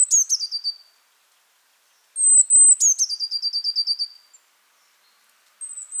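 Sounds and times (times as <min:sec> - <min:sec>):
Eurasian blue tit Cyanistes caeruleus singing: 0:00.0 - 0:00.9, 0:02.2 - 0:05.9.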